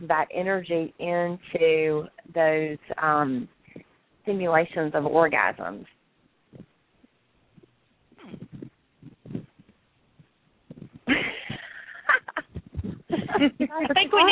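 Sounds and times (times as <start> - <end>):
speech: 0.0 - 3.6, 4.2 - 6.7, 13.4 - 14.3
heavy rhythmic breathwork breathing: 6.5 - 6.8, 7.5 - 14.2.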